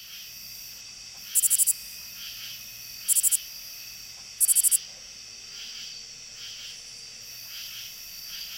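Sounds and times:
steady background insect hum: 0:00.0 - 0:08.5
lesser angle-wing katydid song: 0:01.2 - 0:01.8, 0:03.0 - 0:03.4, 0:04.4 - 0:04.8.

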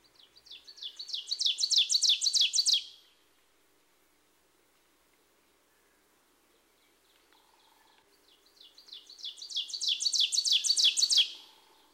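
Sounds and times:
ovenbird warbler singing repeated teacher phrases: 0:00.0 - 0:03.2, 0:05.7 - 0:11.9.

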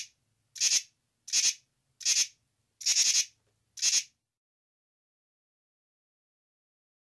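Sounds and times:
male common true katydid Pterophylla camellifolia calling with scratchy pulsed rasps: 0:00.0 - 0:04.1.

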